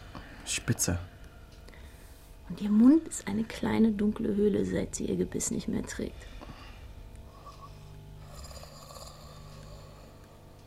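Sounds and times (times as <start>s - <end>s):
speech: 0.5s - 1.1s, 2.5s - 6.4s
elderly woman snoring in bed: 7.3s - 10.3s.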